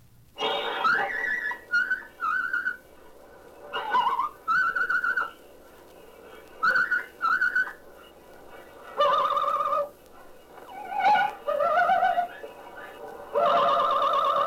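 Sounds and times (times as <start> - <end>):
pet bird whistling and singing a short playful tune: 0.8 - 2.8, 3.8 - 5.5, 6.4 - 8.2, 8.9 - 9.9, 10.6 - 14.4.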